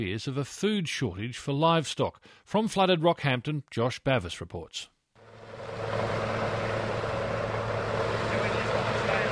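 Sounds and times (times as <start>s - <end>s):
speech: 0.0s - 4.9s
rescue helicopter engine and rotors flying over flooded central Queensland Australia: 5.2s - 9.3s.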